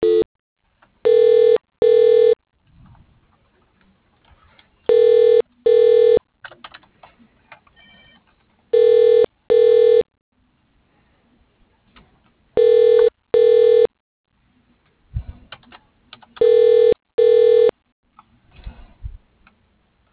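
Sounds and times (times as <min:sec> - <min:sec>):
telephone beeps as a call is transferred to voicemail: 0:00.0 - 0:00.3, 0:01.1 - 0:02.4, 0:04.9 - 0:06.2, 0:07.8 - 0:08.2, 0:08.8 - 0:10.1, 0:12.6 - 0:13.9, 0:16.4 - 0:17.7.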